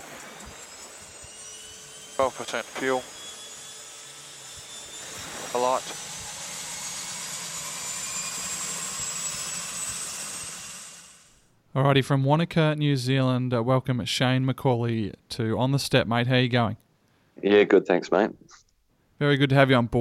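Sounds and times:
right aircraft engine turning over with turbine roar: 0:00.0 - 0:11.4
speech: 0:02.2 - 0:03.2, 0:05.5 - 0:06.1, 0:11.8 - 0:16.8, 0:17.4 - 0:18.5, 0:19.2 - 0:19.9.

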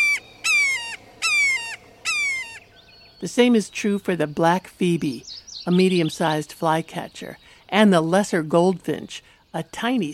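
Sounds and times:
red-shouldered hawk kee-ah screams: 0:00.0 - 0:02.7
speech: 0:03.2 - 0:10.1.

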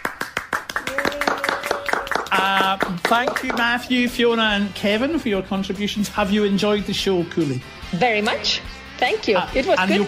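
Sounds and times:
audience applause for a guest: 0:00.0 - 0:03.7
speech: 0:03.1 - 0:10.0.

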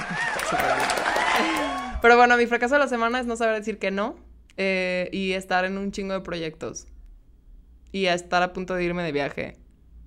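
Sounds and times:
few people clapping: 0:00.0 - 0:02.0
people laughing: 0:00.0 - 0:02.0
people cheering: 0:00.0 - 0:02.1
speech: 0:00.5 - 0:06.9, 0:07.9 - 0:09.6.

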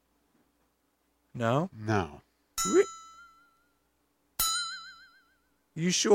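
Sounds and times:
speech: 0:01.4 - 0:02.9, 0:05.8 - 0:06.1
flexatone metallic strikes ringing: 0:02.6 - 0:03.8, 0:04.4 - 0:05.6.

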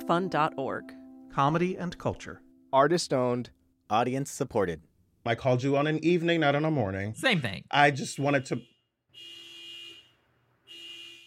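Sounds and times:
speech: 0:00.1 - 0:09.3
car horn honking outside: 0:08.0 - 0:11.2.

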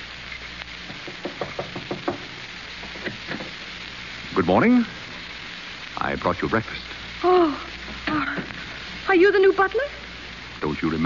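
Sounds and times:
sharp knocks on a door: 0:00.9 - 0:02.3
speech: 0:04.4 - 0:05.0, 0:06.0 - 0:07.7, 0:09.1 - 0:10.0, 0:10.6 - 0:11.0.

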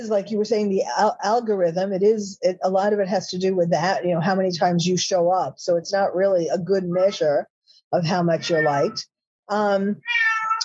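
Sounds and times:
speech: 0:00.0 - 0:10.3
cat meowing: 0:08.4 - 0:09.0, 0:10.0 - 0:10.6.

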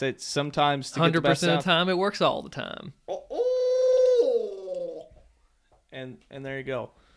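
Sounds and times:
speech: 0:00.0 - 0:03.2, 0:06.0 - 0:07.0
person imitating an owl call with a gargled roll: 0:03.1 - 0:05.2.

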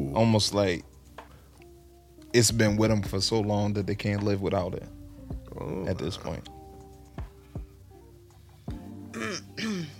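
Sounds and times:
speech: 0:00.2 - 0:00.9, 0:02.3 - 0:06.6
woman clearing her throat: 0:09.1 - 0:09.9.

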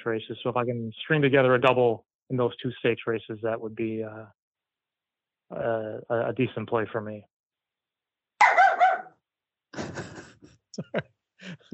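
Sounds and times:
speech: 0:00.0 - 0:04.4, 0:05.5 - 0:07.3, 0:10.8 - 0:11.7
dog barking and yipping: 0:08.4 - 0:09.1
laughter: 0:09.8 - 0:11.7.

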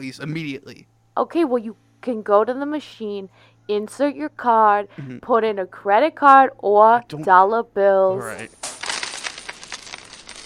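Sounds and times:
speech: 0:00.0 - 0:08.7
coins spilling and clattering on a hard surface: 0:08.2 - 0:10.4.

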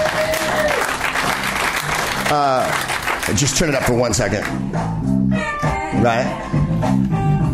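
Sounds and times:
person cheering: 0:00.0 - 0:01.0
audience applause: 0:00.0 - 0:04.0
speech: 0:02.3 - 0:05.4, 0:06.0 - 0:07.4.

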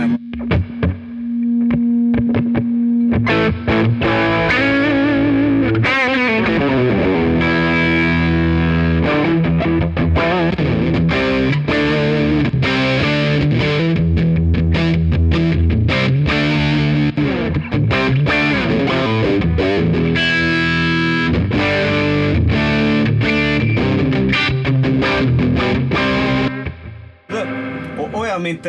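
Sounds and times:
electric guitar played through an overdrive distortion pedal: 0:00.0 - 0:28.6.

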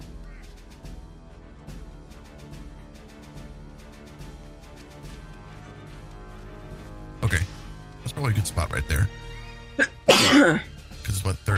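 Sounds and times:
speech: 0:08.2 - 0:09.2, 0:09.8 - 0:10.7
loud sharp sneeze: 0:09.8 - 0:10.7.

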